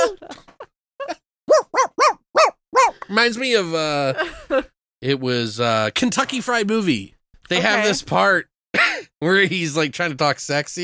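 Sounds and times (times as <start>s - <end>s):
person imitating a small dog's yelps and yips: 0.0s - 0.3s, 1.0s - 3.0s
speech: 3.1s - 8.5s, 9.2s - 10.8s.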